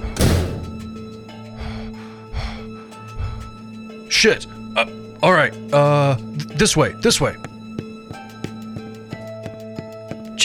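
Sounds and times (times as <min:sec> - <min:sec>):
heavy door shutting with a thud: 0:00.0 - 0:01.2
low hum: 0:00.0 - 0:01.3
speech: 0:04.2 - 0:07.5.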